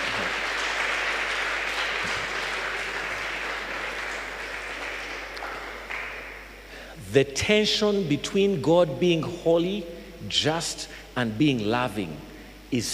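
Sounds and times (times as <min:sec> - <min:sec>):
large crowd applauding: 0:00.0 - 0:06.6
speech: 0:07.1 - 0:12.9.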